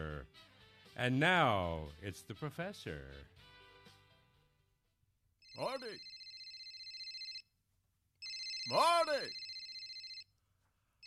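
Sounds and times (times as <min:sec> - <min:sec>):
speech: 0:00.2 - 0:03.5, 0:05.6 - 0:06.1, 0:08.7 - 0:09.4
telephone ringing with a bright electronic trill: 0:05.4 - 0:07.5, 0:08.2 - 0:10.3.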